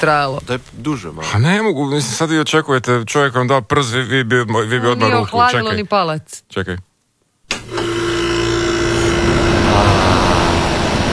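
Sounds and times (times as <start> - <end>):
speech: 0.0 - 6.9
low mechanical hum of air conditioner: 7.6 - 11.1
air conditioner played through a speaker running at full blast: 8.3 - 11.1.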